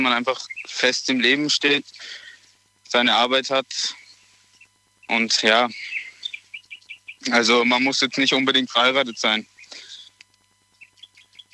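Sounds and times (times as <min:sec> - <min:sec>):
speech: 0:00.0 - 0:02.2, 0:02.9 - 0:04.0, 0:05.1 - 0:06.0, 0:07.2 - 0:09.5
birds chirping outdoors at a carp fishing spot: 0:00.0 - 0:11.5
faint steady hum: 0:00.0 - 0:11.5.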